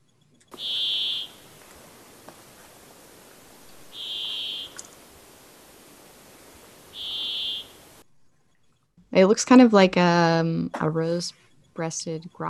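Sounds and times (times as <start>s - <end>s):
soft hiss of noise: 0.0s - 12.4s
brambling Fringilla giving drawn-out wheezy buzzing calls: 0.5s - 8.0s
speech: 9.2s - 12.4s.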